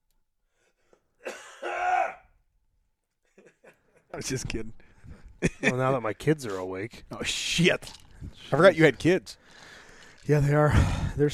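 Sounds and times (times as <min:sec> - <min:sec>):
person coughing: 0:01.2 - 0:02.2
speech: 0:04.2 - 0:04.8, 0:05.6 - 0:11.3.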